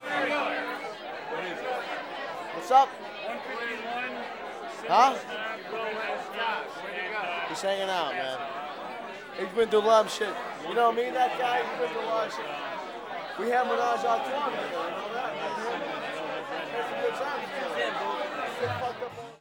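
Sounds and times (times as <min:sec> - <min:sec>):
party crowd in a bar: 0:00.0 - 0:19.3.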